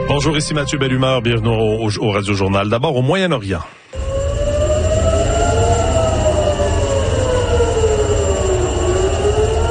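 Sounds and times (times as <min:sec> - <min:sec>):
speech: 0:00.1 - 0:03.8
air raid sirens wailing: 0:03.9 - 0:09.6
low rumble: 0:03.9 - 0:09.6.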